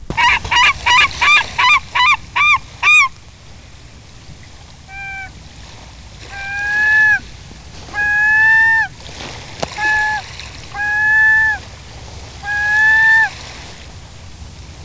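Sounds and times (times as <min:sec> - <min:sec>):
herring gull calling: 0:00.0 - 0:03.2, 0:04.8 - 0:05.4, 0:06.2 - 0:09.0, 0:09.6 - 0:11.7, 0:12.4 - 0:13.5.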